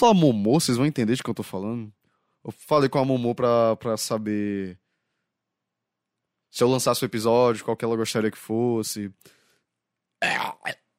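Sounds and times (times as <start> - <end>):
speech: 0.0 - 4.8, 6.5 - 9.4, 10.2 - 10.8
loud burp: 10.2 - 10.9.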